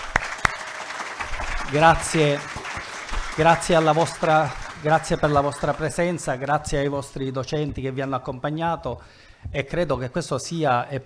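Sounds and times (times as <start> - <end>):
audience applause: 0.0 - 7.0
speech: 1.7 - 2.6, 3.4 - 11.0.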